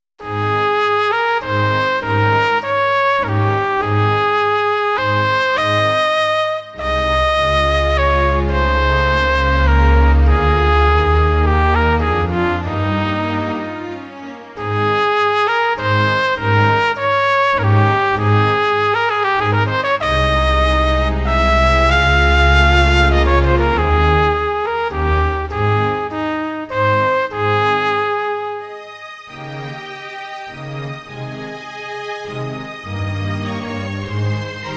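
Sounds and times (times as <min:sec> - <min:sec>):
trumpet: 0:00.2 - 0:34.7.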